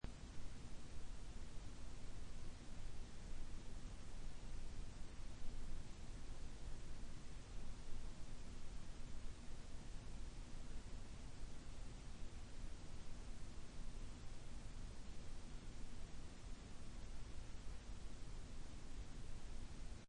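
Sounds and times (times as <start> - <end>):
bedroom room tone: 0.0 - 20.0.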